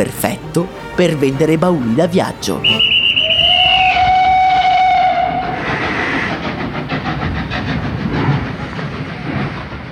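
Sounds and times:
speech: 0.0 - 2.9
long train horn blast: 0.7 - 6.3
train rumbling along the tracks: 2.8 - 9.9.

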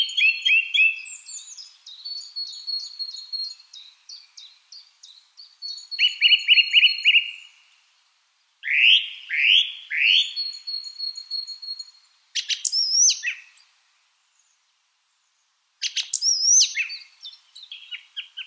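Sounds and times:
bird singing rapid chirps, trills and buzzy notes: 0.0 - 7.6, 8.6 - 13.7, 15.3 - 18.4.

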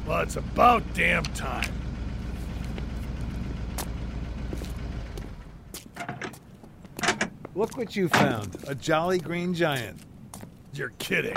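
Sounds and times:
blue truck engine sputtering as it pulls up: 0.0 - 11.3
speech: 0.1 - 1.8, 7.6 - 10.1, 10.8 - 11.3
sharp clicks and knocks: 5.8 - 7.4.

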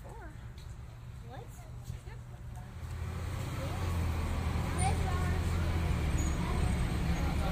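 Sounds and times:
faint indistinct voices: 0.0 - 7.5
general traffic noise: 0.0 - 7.5
bus passing at a roadside stop: 2.3 - 7.5.

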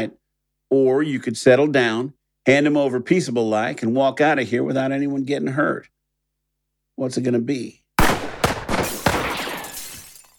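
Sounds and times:
speech: 0.0 - 6.0, 7.0 - 7.8
gunshot knocking a gun from a hand: 8.0 - 9.7
bottles breaking: 8.6 - 10.3.

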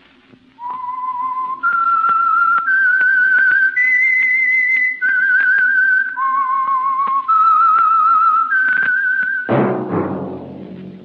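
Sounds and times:
lone whistler whistling a slow melody: 0.6 - 9.5
loud crash: 9.5 - 11.0.

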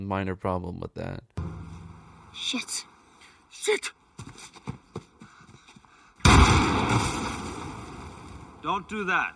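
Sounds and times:
speech: 0.0 - 1.3, 2.3 - 2.9, 3.5 - 4.6, 8.6 - 9.3
grenade explosion in a film: 6.2 - 8.6.

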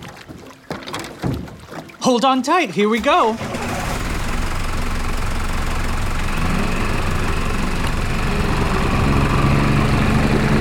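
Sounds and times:
speech: 2.0 - 3.5
dive boat engine running on the way to the coral reef off Kapalua Bay in Hawaii: 3.0 - 10.6.

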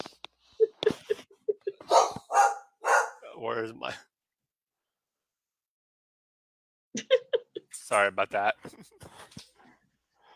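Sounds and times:
dog barking: 1.9 - 3.3
speech: 3.4 - 4.1, 7.9 - 9.0.

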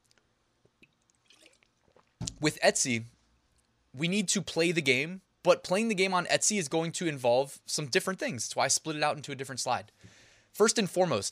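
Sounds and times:
sipping water: 0.6 - 2.5
speech: 2.4 - 3.2, 4.0 - 11.3.

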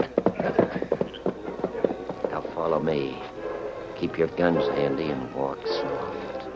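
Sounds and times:
horses' hooves clip-clopping: 0.0 - 3.3
speech: 2.8 - 3.3, 4.0 - 6.3.

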